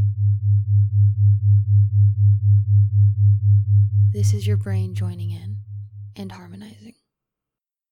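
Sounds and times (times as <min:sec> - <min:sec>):
binaural beat low pure sine tones, different frequency each ear: 0:00.0 - 0:06.2
speech: 0:04.2 - 0:07.0.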